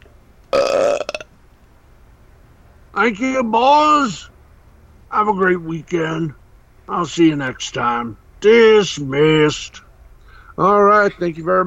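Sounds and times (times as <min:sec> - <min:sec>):
person belching: 0:00.5 - 0:01.3
speech: 0:03.0 - 0:04.3, 0:05.1 - 0:09.8, 0:10.6 - 0:11.6.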